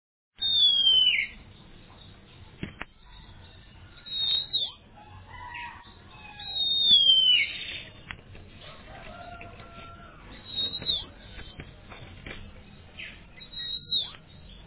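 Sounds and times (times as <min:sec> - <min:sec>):
Oriental magpie-robin whistle: 0:00.4 - 0:04.9, 0:05.5 - 0:08.1, 0:10.4 - 0:11.6, 0:13.0 - 0:14.6.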